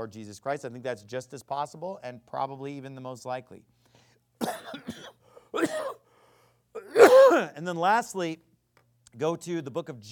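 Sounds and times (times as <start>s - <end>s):
speech: 0.0s - 6.0s, 7.3s - 8.5s, 9.1s - 10.1s
harsh coughs: 4.4s - 6.1s, 6.8s - 7.5s.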